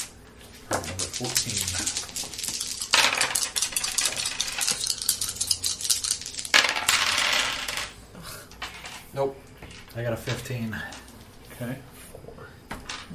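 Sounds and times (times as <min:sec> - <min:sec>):
speech: 0:00.7 - 0:02.0, 0:09.2 - 0:09.4, 0:10.0 - 0:11.0, 0:11.6 - 0:11.9
dice rattling on a hard surface: 0:00.7 - 0:08.0.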